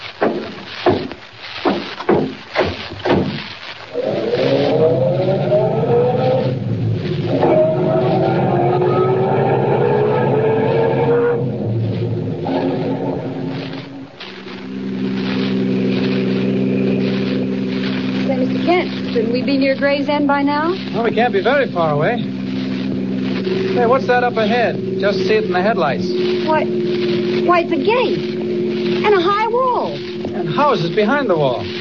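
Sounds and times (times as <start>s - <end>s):
sharp knocks: 0.2s - 3.5s
car engine droning as a vehicle drives at night toward a town: 3.9s - 31.7s
speech: 20.1s - 22.3s, 23.4s - 31.7s.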